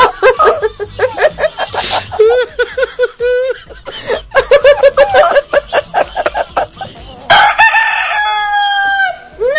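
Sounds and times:
laughter: 0:00.0 - 0:07.3
chicken squawking with rapid clucks and shrieks: 0:06.8 - 0:09.4.

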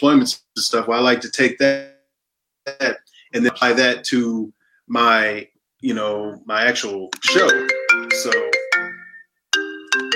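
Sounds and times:
speech: 0:00.0 - 0:01.9, 0:02.6 - 0:08.6
phone ringtone for an incoming call with chiming melody: 0:07.3 - 0:10.1.

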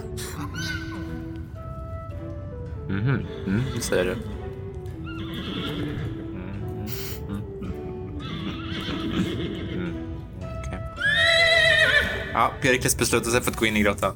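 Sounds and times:
speech: 0:02.9 - 0:04.4, 0:12.4 - 0:14.1
horses neighing and whinnying: 0:02.9 - 0:10.3, 0:10.9 - 0:12.6.

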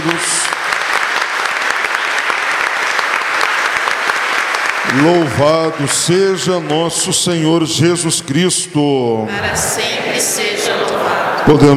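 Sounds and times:
speech: 0:00.0 - 0:00.4, 0:05.0 - 0:11.7
audience applauding in a church: 0:00.0 - 0:07.1.

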